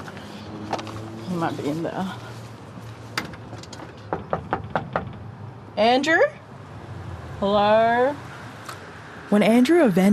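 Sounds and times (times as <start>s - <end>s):
speech: 1.4s - 2.3s, 5.8s - 6.4s, 7.4s - 8.3s, 9.3s - 10.1s
knocking on a door: 4.1s - 5.3s.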